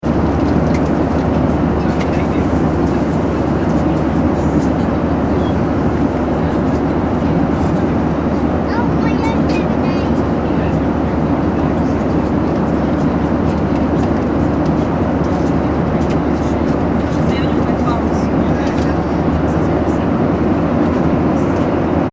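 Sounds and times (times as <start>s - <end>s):
Boeing 737-800 commercial aircraft interior in-flight ambience: 0.0s - 22.1s.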